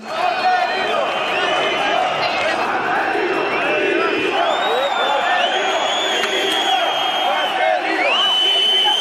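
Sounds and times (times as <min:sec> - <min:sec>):
huge stadium crowd chanting in unison for manager's resignation: 0:00.0 - 0:08.9
whistles in a stadium crowd: 0:00.8 - 0:01.8, 0:04.2 - 0:08.9.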